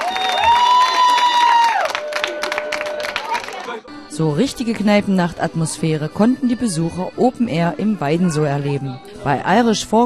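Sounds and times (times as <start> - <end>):
drawn-out whistle-like whoop: 0.0 - 3.2
audience clapping: 0.0 - 3.8
crowd cheering: 0.0 - 3.9
speech: 4.2 - 10.0.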